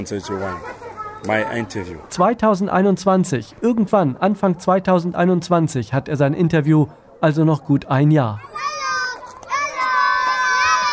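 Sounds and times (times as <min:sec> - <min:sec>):
speech: 0:00.0 - 0:08.5
children shouting while playing in a refugee camp: 0:08.4 - 0:10.9.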